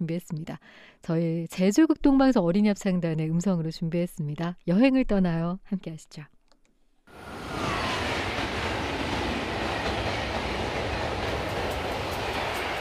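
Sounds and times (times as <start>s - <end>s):
speech: 0.0s - 6.4s
train rumbling along rails: 7.1s - 12.8s.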